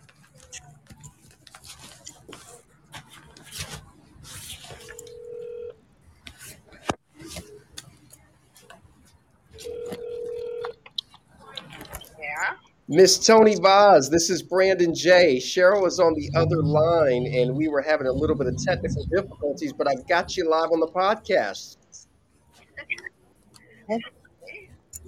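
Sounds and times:
outgoing phone call ringback tone to a Los Angeles number: 4.8 - 5.8, 9.6 - 10.8
speech: 12.9 - 21.8, 23.9 - 24.1.

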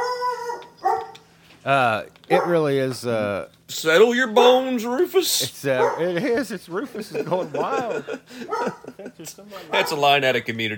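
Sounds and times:
dog barking: 0.0 - 1.2, 2.3 - 2.7, 5.8 - 6.2, 8.5 - 8.9, 9.7 - 10.1
dog howling: 0.0 - 1.2
speech: 1.6 - 10.7
laughter: 5.3 - 9.8.

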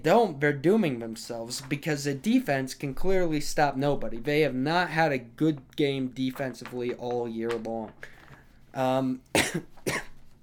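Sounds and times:
speech: 0.0 - 10.1
man with a dry throat coughing: 9.3 - 10.2.

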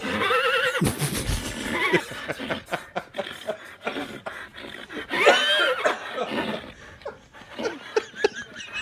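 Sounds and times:
horse neighing and whinnying: 0.0 - 6.8
horse snorting: 0.5 - 8.0
breathy shuffling: 0.7 - 2.7
laughter: 0.8 - 4.5, 5.1 - 8.7.

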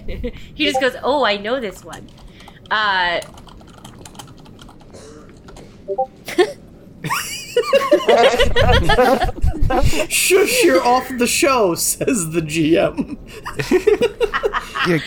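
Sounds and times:
speech: 0.1 - 3.4, 5.9 - 15.0
computer keyboard typing: 1.8 - 6.1
people laughing and chuckling: 6.3 - 11.0, 13.0 - 15.0.

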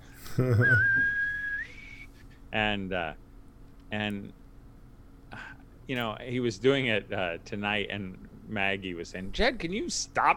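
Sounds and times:
speech: 0.4 - 1.2, 2.5 - 3.2, 3.9 - 4.4, 5.3 - 10.3
sharp high-pitched whistle: 0.7 - 2.1.

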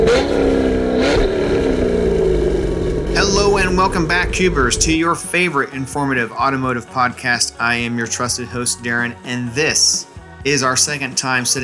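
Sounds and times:
car engine revving: 0.0 - 5.3
speech: 3.7 - 11.6.

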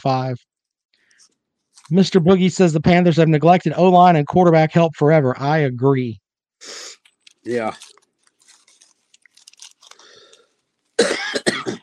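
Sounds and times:
speech: 0.0 - 0.5, 1.9 - 6.8, 7.4 - 7.9
soft crackling rustles: 0.5 - 2.1, 7.0 - 11.0
harsh loud coughs from a person with a cold: 11.0 - 11.8.

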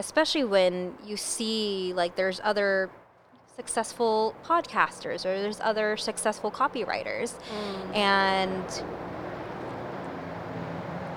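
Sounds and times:
speech: 0.0 - 3.0, 3.6 - 9.1
helicopter flying overhead: 3.6 - 11.1.

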